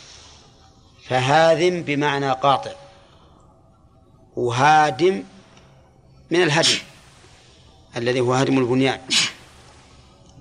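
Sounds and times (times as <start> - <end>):
speech: 1.1 - 2.8, 4.4 - 5.4, 6.3 - 6.9, 7.9 - 9.2
sneeze: 6.6 - 6.9, 9.1 - 9.4.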